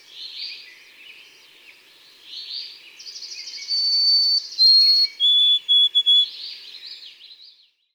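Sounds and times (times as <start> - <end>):
white-throated sparrow's plaintive whistled song: 2.3 - 7.9.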